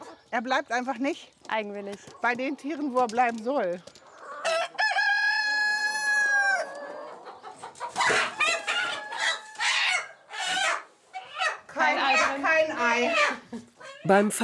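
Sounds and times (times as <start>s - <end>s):
speech: 0.3s - 4.0s, 14.1s - 14.4s
fowl clucking and squawking: 4.2s - 14.2s
rooster crowing on a farm: 4.4s - 7.0s, 8.0s - 10.1s.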